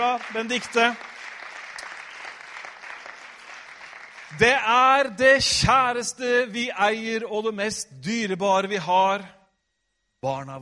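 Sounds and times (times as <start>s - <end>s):
speech: 0.0s - 1.1s, 4.4s - 9.4s, 10.2s - 10.5s
large gathering applauding: 0.0s - 5.1s.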